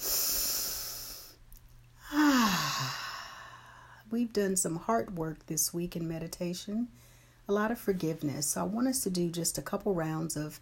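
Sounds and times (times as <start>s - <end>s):
deep breath and long sighing exhale during a guided meditation: 0.0s - 1.4s, 2.0s - 4.0s
speech: 4.1s - 10.6s.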